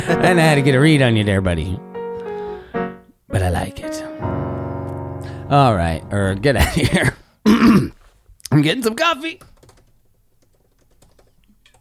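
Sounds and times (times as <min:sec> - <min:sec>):
speech: 0:00.1 - 0:01.9, 0:03.3 - 0:04.0, 0:05.5 - 0:09.5
computer keyboard typing: 0:09.4 - 0:11.8.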